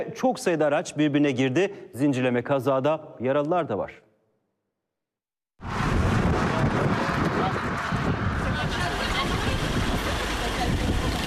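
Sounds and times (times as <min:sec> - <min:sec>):
speech: 0:00.0 - 0:04.0
sandstorm wind roaring across the Aksaray–Konya highway: 0:05.6 - 0:11.2.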